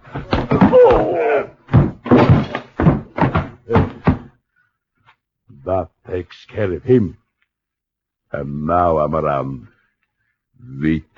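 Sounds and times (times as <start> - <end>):
punches landing in a scuffle: 0.0 - 4.3
door slamming: 0.2 - 4.3
speech: 5.7 - 7.2, 8.3 - 9.7, 10.6 - 11.1.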